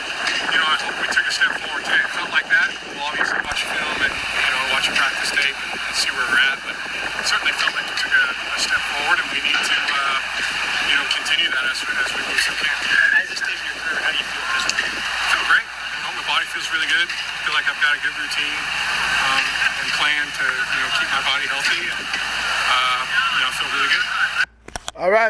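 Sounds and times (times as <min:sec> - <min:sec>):
wind buffeting an outdoor microphone at a football practice: 0:00.0 - 0:24.1
people talking at a football practice: 0:00.0 - 0:25.2.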